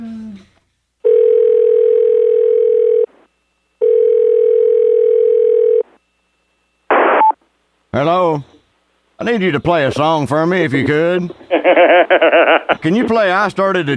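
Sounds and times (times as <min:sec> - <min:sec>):
loud telephone dial tone after a phone is hung up: 0:01.0 - 0:03.1, 0:03.8 - 0:05.8
sudden burst of noise: 0:06.9 - 0:07.4
speech: 0:08.0 - 0:08.5, 0:09.2 - 0:13.9
laughter: 0:11.5 - 0:13.1.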